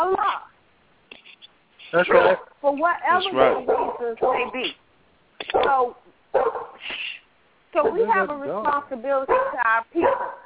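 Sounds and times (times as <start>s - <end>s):
speech: 1.9s - 4.8s, 5.5s - 7.0s, 7.7s - 10.4s
female dog barking and yelping with whining tones: 2.0s - 2.6s, 3.2s - 4.8s, 5.5s - 6.8s, 7.8s - 8.2s, 9.3s - 10.4s.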